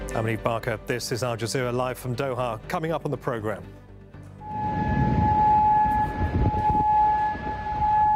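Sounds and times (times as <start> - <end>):
speech: 0.2 - 3.8
air raid siren wailing: 4.4 - 8.1.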